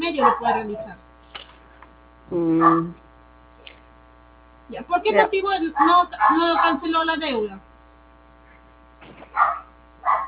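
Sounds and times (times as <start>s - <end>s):
dog barking: 0.2s - 0.6s, 2.6s - 2.9s, 5.7s - 6.9s, 9.3s - 10.2s
speech: 0.2s - 1.1s, 2.3s - 3.0s, 4.7s - 7.7s.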